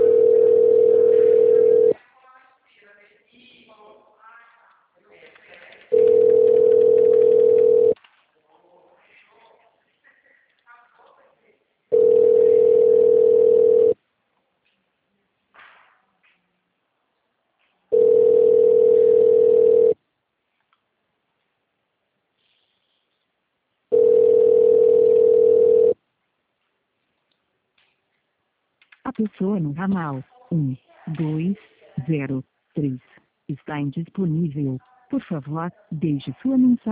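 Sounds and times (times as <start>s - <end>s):
telephone ringback tone as a call connects: 0.0s - 2.0s, 5.9s - 8.0s, 11.9s - 14.0s, 17.9s - 20.0s, 23.9s - 26.0s
speech: 29.2s - 36.9s.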